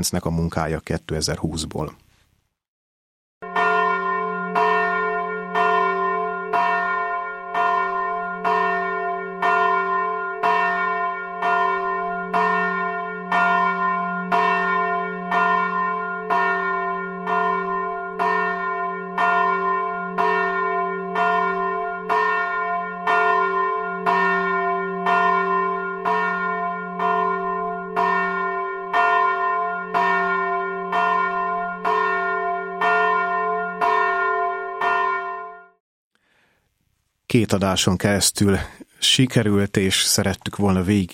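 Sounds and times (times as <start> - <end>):
speech: 0.0 - 2.0, 37.3 - 41.1
large 500 kg church bell ringing in F1: 3.4 - 35.8.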